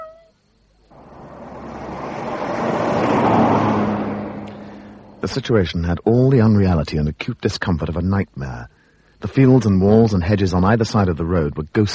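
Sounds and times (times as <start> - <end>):
Lagonda car engine and road roar driving along a country road: 0.9 - 6.7
speech: 5.3 - 11.9.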